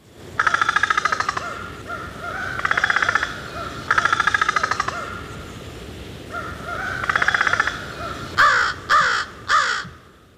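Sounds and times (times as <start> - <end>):
crow rattling calls: 0.4 - 5.2, 6.3 - 7.8, 8.4 - 9.9
crow harsh caws: 0.4 - 5.3, 6.3 - 10.1.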